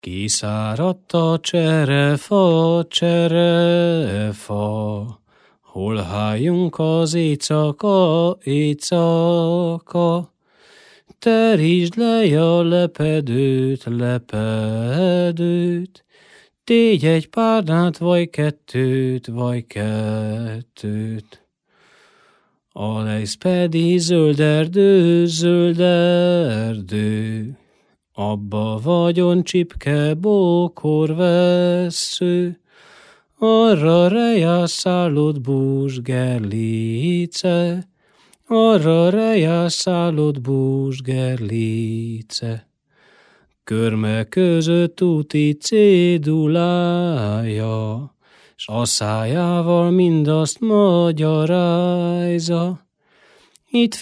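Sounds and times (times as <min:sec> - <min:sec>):
folk song: 0:00.0 - 0:54.0.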